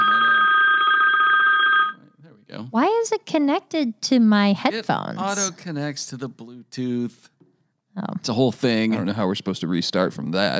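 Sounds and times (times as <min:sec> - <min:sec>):
phone ringing with a bright electronic trill: 0:00.0 - 0:02.0
speech: 0:02.8 - 0:07.3, 0:08.0 - 0:10.5.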